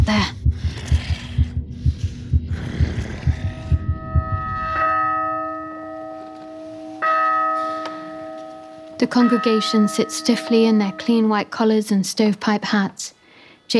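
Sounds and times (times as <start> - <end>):
fast pounding heartbeat: 0.0 - 6.2
speech: 0.1 - 0.4, 9.0 - 13.7
resonant ringing bell strikes: 3.4 - 11.8.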